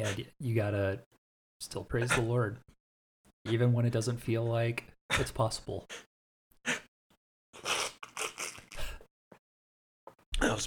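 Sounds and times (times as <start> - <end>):
speech: 0.0 - 2.8, 3.4 - 6.8, 10.4 - 10.6
sniffling after crying: 6.7 - 6.9, 7.6 - 9.1
nose-wiping after crying: 7.6 - 9.0.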